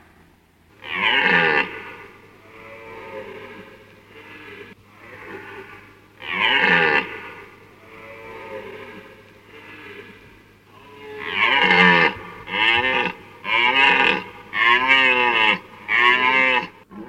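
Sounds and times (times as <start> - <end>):
constant low hum: 0.0 - 17.0
deer bellowing: 0.7 - 17.0.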